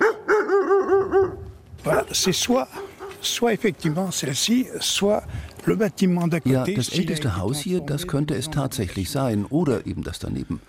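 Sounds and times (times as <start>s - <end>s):
dog barking in a farmyard: 0.0s - 2.1s, 2.7s - 3.2s
speech: 2.1s - 10.6s.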